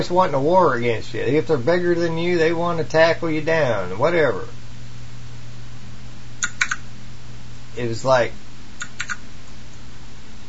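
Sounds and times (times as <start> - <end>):
speech: 0.0 - 4.6, 7.8 - 8.4
low steady hum: 0.0 - 10.4
crisp computer keyboard clicks: 6.4 - 6.8, 8.8 - 9.2.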